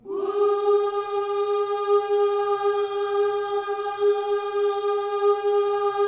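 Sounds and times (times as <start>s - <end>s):
gospel vocal whoo at G#4: 0.0s - 6.0s.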